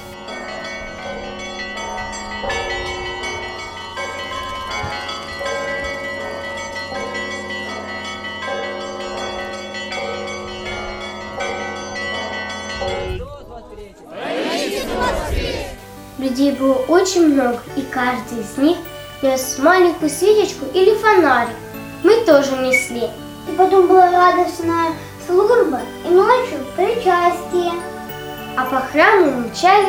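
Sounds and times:
church bells ringing in a dense overlapping peal: 0.0 - 13.2, 15.8 - 29.8
crowd murmuring: 14.1 - 29.8
speech: 16.2 - 27.9, 28.6 - 29.8.

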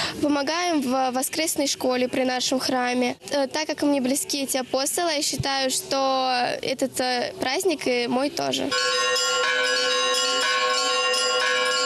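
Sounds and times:
speech: 0.2 - 9.7
church bells ringing a festive peal during a religious cross procession: 8.7 - 11.8.

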